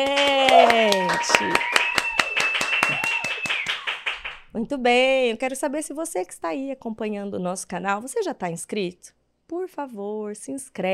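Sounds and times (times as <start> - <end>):
speech: 0.0 - 1.7, 4.6 - 10.9
round of applause, hands clapping: 0.0 - 4.4.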